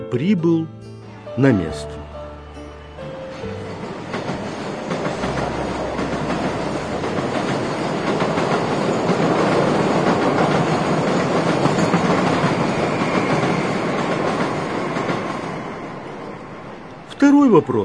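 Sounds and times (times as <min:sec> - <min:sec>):
speech: 0:00.1 - 0:02.0, 0:17.3 - 0:17.8
train rumbling past: 0:01.0 - 0:17.8
rhythmic clatter of train wheels on rails: 0:03.3 - 0:17.1.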